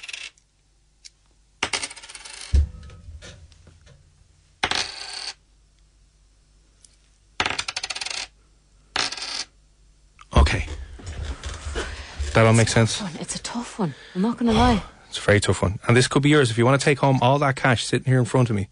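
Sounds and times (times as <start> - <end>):
coins dropping onto a hard surface: 0.0 - 0.4, 1.6 - 2.6, 4.6 - 5.4, 7.4 - 8.4, 9.0 - 9.5
speech: 12.4 - 18.7.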